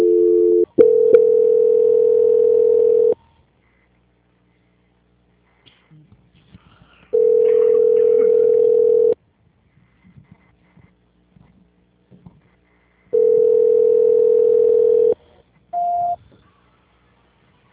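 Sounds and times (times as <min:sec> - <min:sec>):
telephone tones while a call is transferred: 0:00.0 - 0:03.2, 0:07.2 - 0:09.2, 0:13.2 - 0:15.2, 0:15.8 - 0:16.2.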